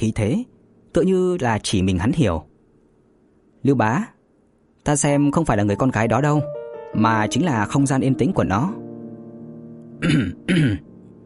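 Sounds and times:
speech: 0:00.0 - 0:02.5, 0:03.6 - 0:04.1, 0:04.8 - 0:08.8, 0:10.0 - 0:10.9
old man coughing after choking on saliva: 0:10.0 - 0:10.9.

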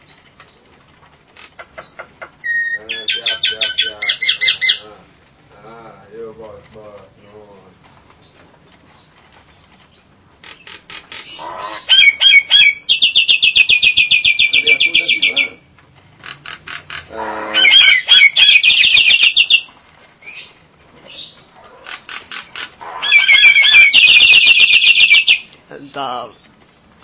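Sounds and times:
Nias hill myna calling with rattling trills and whistles: 0:01.3 - 0:06.3, 0:09.9 - 0:26.4.

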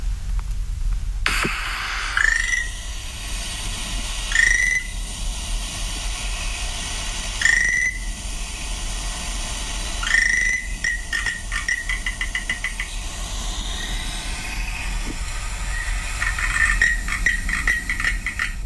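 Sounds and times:
hiss: 0:00.0 - 0:18.6
frog calls on Amami Oshima island: 0:02.1 - 0:02.8, 0:04.3 - 0:05.0, 0:07.3 - 0:08.1, 0:09.9 - 0:18.6.

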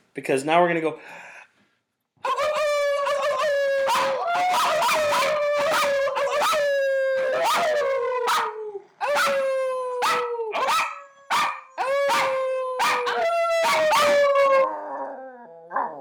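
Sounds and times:
speech: 0:00.2 - 0:01.3
dog howling: 0:02.2 - 0:15.9.

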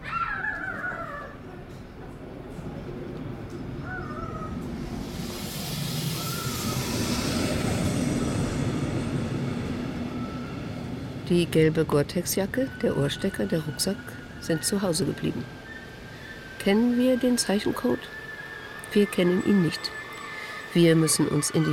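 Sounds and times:
regional train arriving at a station platform: 0:00.3 - 0:21.7
crow-like caws: 0:03.8 - 0:04.6
speech: 0:11.3 - 0:15.6, 0:16.6 - 0:18.2, 0:18.9 - 0:20.0, 0:20.7 - 0:21.7.

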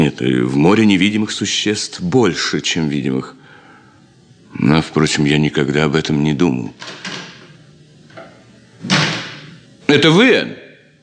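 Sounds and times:
speech: 0:00.1 - 0:03.4, 0:04.6 - 0:07.0, 0:09.9 - 0:10.6
door slamming: 0:08.8 - 0:09.6.

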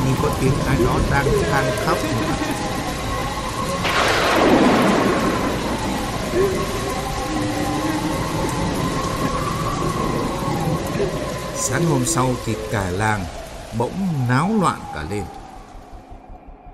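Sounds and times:
heavy late-night rain: 0:00.0 - 0:16.4
late-night thunder rumbling: 0:00.0 - 0:16.7
late-night thunderstorm wind: 0:00.0 - 0:16.7
speech: 0:00.2 - 0:02.6, 0:11.0 - 0:15.4.

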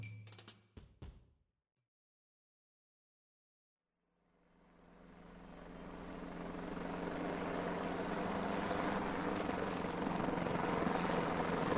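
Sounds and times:
helicopter flying low over treetops on hilltop ridges: 0:04.4 - 0:11.7.

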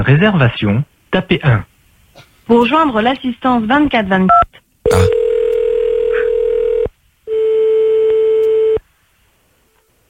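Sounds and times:
speech: 0:00.0 - 0:01.7, 0:02.5 - 0:05.2
ringback tone on a phone line while a call is redialed: 0:04.9 - 0:08.8.

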